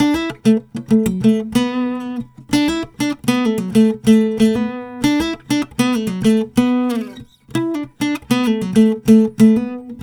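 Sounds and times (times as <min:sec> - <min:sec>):
acoustic guitar playing E minor: 0:00.0 - 0:10.0.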